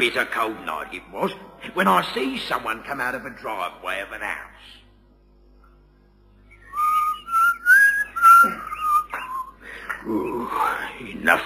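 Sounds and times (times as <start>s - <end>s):
speech: 0.0s - 4.8s, 10.0s - 11.4s
person whistling a short melodic tune: 6.6s - 9.6s.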